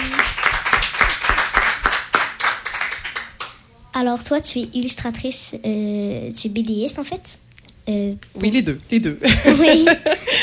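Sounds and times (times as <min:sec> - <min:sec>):
small crowd applauding at a radiothon: 0:00.0 - 0:03.5
speech: 0:04.0 - 0:10.4
laughter: 0:09.2 - 0:10.4.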